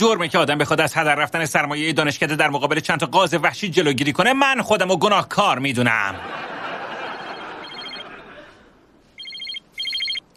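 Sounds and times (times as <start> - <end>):
speech: 0.0 - 6.5
laughter: 6.1 - 8.8
telephone ringing in electronic trills: 6.6 - 8.2, 9.1 - 10.3.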